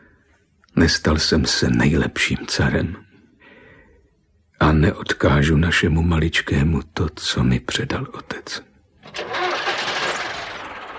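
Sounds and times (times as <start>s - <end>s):
speech: 0.8s - 3.1s, 4.6s - 9.2s
large truck engine starting at night: 9.0s - 10.9s.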